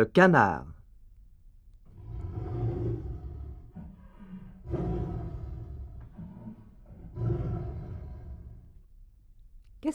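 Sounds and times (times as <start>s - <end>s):
tiger roaring: 1.9s - 8.9s.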